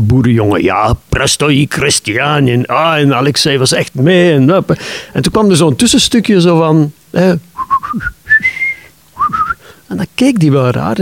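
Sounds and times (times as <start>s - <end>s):
speech: 0.0s - 8.5s, 9.9s - 10.9s
person whistling a short melody in a Russian person's house: 7.6s - 9.6s.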